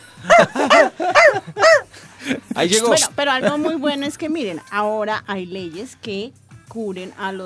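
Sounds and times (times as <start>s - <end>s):
laughter: 0.0s - 4.0s
pet malamute barking: 0.3s - 1.9s
speech: 2.3s - 7.4s.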